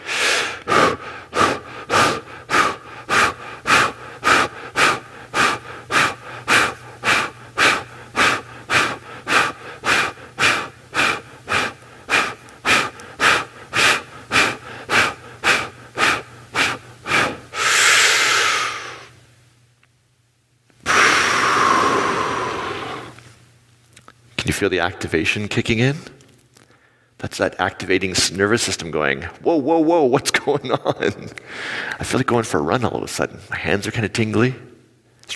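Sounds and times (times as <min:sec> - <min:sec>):
long exhale: 0:00.0 - 0:19.2, 0:20.8 - 0:23.3
rapid forceful breathing in a quick rhythmic breathing exercise: 0:00.0 - 0:19.2, 0:20.8 - 0:23.3
speech: 0:24.6 - 0:26.2, 0:27.3 - 0:34.7.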